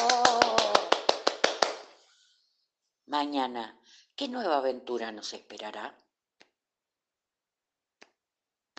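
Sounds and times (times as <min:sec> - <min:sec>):
crisp hand claps: 0:00.0 - 0:02.0
speech: 0:03.2 - 0:06.0.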